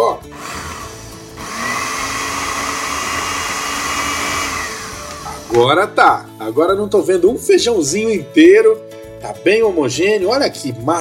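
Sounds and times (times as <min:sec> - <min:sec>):
food processor blending cooked beans into a paste: 0:00.0 - 0:05.8
speech: 0:05.5 - 0:10.9.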